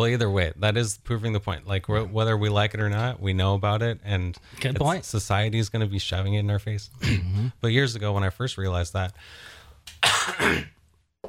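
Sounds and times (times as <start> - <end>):
speech: 0.0 - 10.8
person coughing harshly: 7.0 - 7.5, 10.0 - 10.8.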